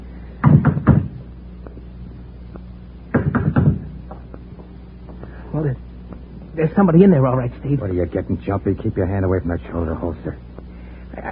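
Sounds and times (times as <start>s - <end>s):
firm knocks on a door: 0.4s - 1.2s, 3.2s - 3.9s
speech: 5.6s - 5.9s, 6.6s - 10.5s.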